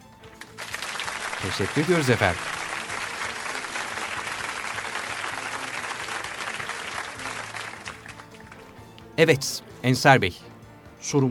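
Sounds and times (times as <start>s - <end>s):
audience applause at a quiz competition: 0.0s - 8.8s
speech: 1.4s - 2.6s, 9.2s - 11.2s.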